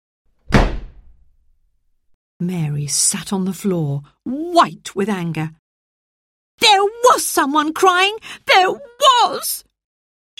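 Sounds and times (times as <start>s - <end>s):
nursery door slamming shut: 0.4s - 1.3s
speech: 2.4s - 5.6s, 7.1s - 9.7s.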